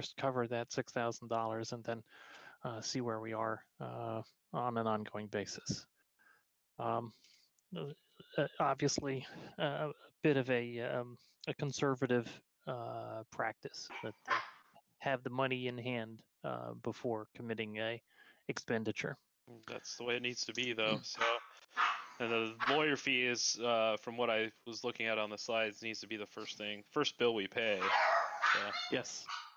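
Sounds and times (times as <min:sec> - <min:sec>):
speech: 0:00.0 - 0:05.9, 0:06.8 - 0:21.4, 0:22.2 - 0:29.4
dogs barking: 0:13.9 - 0:14.6, 0:21.1 - 0:23.0, 0:27.7 - 0:29.5.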